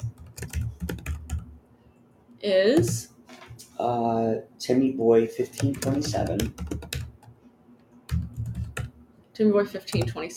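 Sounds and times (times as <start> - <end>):
fingers typing on a computer keyboard: 0.0 - 1.5, 5.6 - 7.4, 8.1 - 8.9, 9.9 - 10.2
speech: 2.4 - 3.1, 3.8 - 6.8, 9.4 - 10.3.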